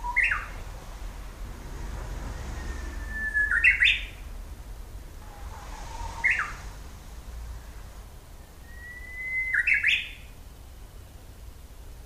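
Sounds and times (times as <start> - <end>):
Japanese bush warbler singing: 0.0 - 4.6, 5.2 - 6.8, 7.6 - 11.0.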